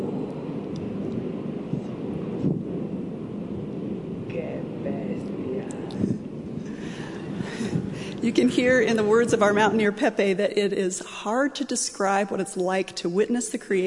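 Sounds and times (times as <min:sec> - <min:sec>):
roar of a roiling incandescent lava lake: 0:00.0 - 0:10.4
wind: 0:00.0 - 0:13.8
speech: 0:08.2 - 0:13.8.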